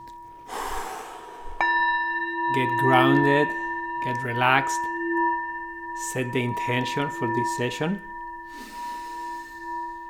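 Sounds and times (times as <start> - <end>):
deep breath: 0.4 - 1.7, 8.5 - 10.0
sustained tones: 2.4 - 10.0
speech: 2.6 - 4.9, 6.0 - 8.8.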